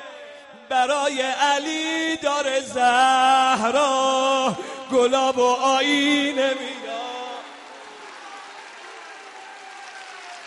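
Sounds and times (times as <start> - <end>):
speech: 0.7 - 6.7
large crowd applauding: 7.0 - 10.4.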